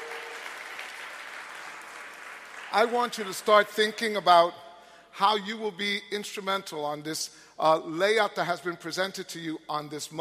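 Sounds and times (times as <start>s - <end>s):
church congregation clapping in praise at a Mother's Day service: 0.0s - 4.0s
speech: 2.7s - 4.6s, 5.2s - 10.1s.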